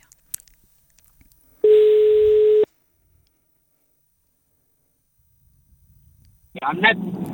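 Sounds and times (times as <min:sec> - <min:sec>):
telephone ringing tone while placing a call: 0:01.6 - 0:02.7.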